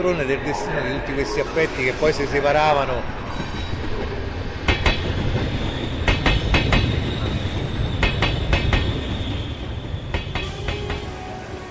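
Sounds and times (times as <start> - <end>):
speech: 0.0 - 3.5
train rumbling beside the platform: 0.0 - 11.6
train bursts of puffing hiss: 10.1 - 11.6.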